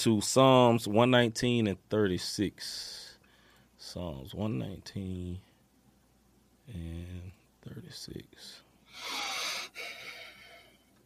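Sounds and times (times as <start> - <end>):
speech: 0.0 - 3.1, 3.8 - 5.5, 6.7 - 10.0
loud heavy breathing: 8.9 - 10.8.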